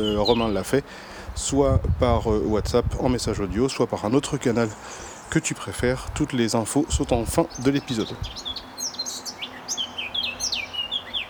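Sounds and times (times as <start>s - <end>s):
bird chirping: 0.0s - 0.8s, 3.7s - 11.2s
speech: 0.0s - 8.6s.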